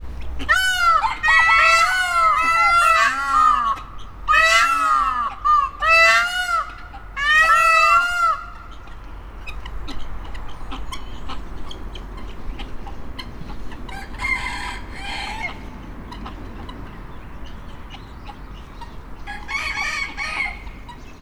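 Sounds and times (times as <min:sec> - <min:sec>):
peacock calling in a zoo: 0:00.0 - 0:21.1
rooster crowing in a zoo: 0:00.5 - 0:08.5, 0:13.9 - 0:16.6, 0:19.2 - 0:21.0.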